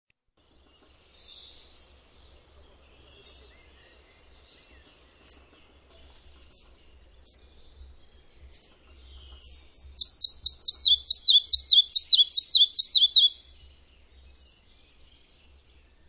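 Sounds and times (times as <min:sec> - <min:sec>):
bird high ticking notes: 0:08.5 - 0:13.4
bird bright downslurred chirps: 0:09.4 - 0:13.4.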